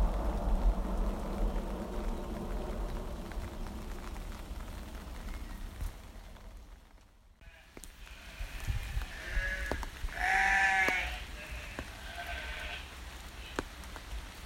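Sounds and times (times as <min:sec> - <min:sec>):
outdoor ambience: 0:00.0 - 0:14.4
sheep bleating: 0:07.4 - 0:12.9.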